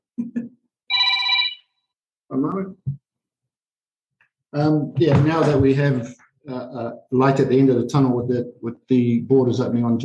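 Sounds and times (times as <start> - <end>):
mobile phone electronic ringtone with low blips: 0.9 - 1.9
speech: 2.3 - 3.0, 4.5 - 10.0.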